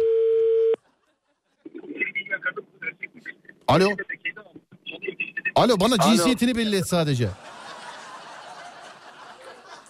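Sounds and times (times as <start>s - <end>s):
voice talking over the telephone line: 1.8s - 7.0s
speech: 3.7s - 4.1s, 5.6s - 7.5s
laughter: 7.2s - 9.8s.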